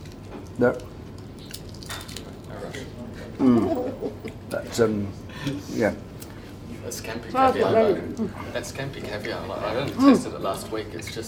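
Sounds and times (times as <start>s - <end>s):
crunchy chewing of an oyster sandwich: 0.0s - 6.8s
low hum: 0.0s - 11.2s
speech: 0.6s - 0.9s, 3.4s - 6.1s, 6.8s - 11.2s.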